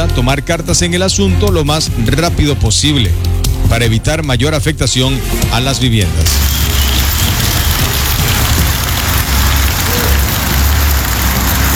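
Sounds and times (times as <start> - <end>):
speech: 0.2 - 6.7
heavy rain pattering on hard surfaces in Bellavista: 6.3 - 11.7.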